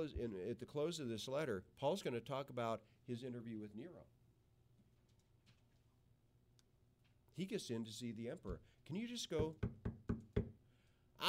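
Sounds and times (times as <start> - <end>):
speech: 0.0 - 4.2, 7.4 - 10.0
firm knocking on a door: 9.4 - 10.6.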